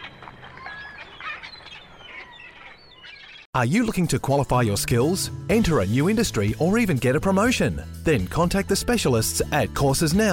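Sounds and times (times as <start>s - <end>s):
parrot squawking: 0.0s - 3.5s
speech: 3.6s - 10.3s.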